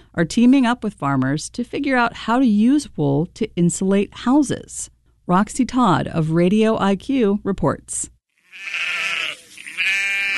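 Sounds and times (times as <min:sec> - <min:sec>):
speech: 0:00.2 - 0:10.0
sheep bleating on a farm: 0:08.4 - 0:10.3.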